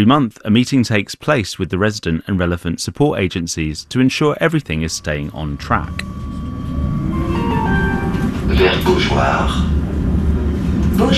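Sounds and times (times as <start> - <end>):
speech: 0.0 - 6.4, 8.5 - 9.7, 11.0 - 11.1
tram rolling along its rails heard from on board: 3.0 - 11.1
faint electric whine of tram: 3.9 - 8.5.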